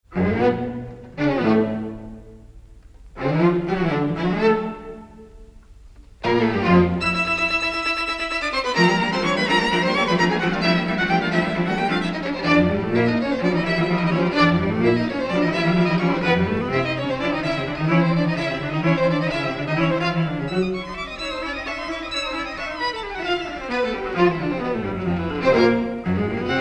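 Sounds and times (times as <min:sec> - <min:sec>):
string quartet playing a lively finale: 0:00.1 - 0:02.3, 0:03.2 - 0:05.3, 0:06.2 - 0:26.5.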